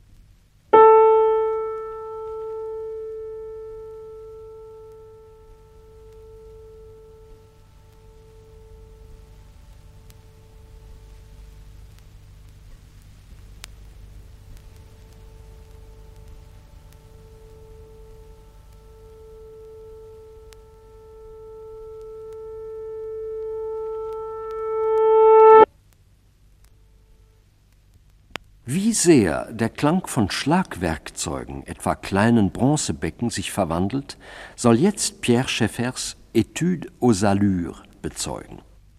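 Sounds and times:
piano tone played backwards on tape: 0:00.8 - 0:09.1, 0:17.1 - 0:25.7
speech: 0:28.7 - 0:38.7.

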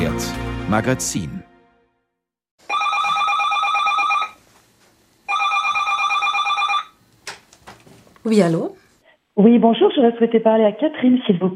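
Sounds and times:
speech: 0:00.7 - 0:01.5, 0:08.2 - 0:08.8, 0:09.4 - 0:11.5
telephone ringing with electronic trill: 0:02.6 - 0:04.4, 0:05.3 - 0:07.0.

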